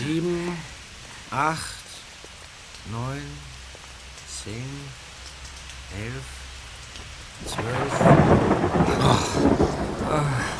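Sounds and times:
rain hissing: 0.0s - 10.5s
speech: 0.1s - 1.8s, 2.8s - 3.5s, 4.4s - 5.0s, 5.9s - 6.4s, 7.4s - 9.6s, 10.2s - 10.5s
thunder rumbling during a rainstorm: 7.3s - 10.5s.

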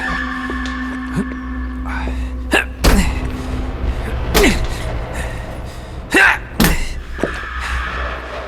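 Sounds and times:
low steady hum: 0.0s - 7.8s
heavy thuds and rattling bangs of a locked door being yanked: 2.8s - 7.6s.

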